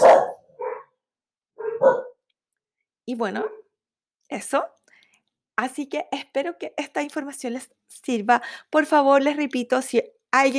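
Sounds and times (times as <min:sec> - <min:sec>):
dogs barking: 0:00.0 - 0:01.0, 0:01.6 - 0:02.2, 0:03.4 - 0:03.7
speech: 0:03.1 - 0:03.6, 0:04.3 - 0:04.8, 0:05.6 - 0:10.5.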